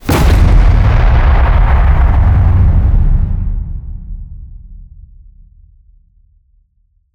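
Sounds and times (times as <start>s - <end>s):
distorted designed cinematic hits: 0.0s - 5.2s.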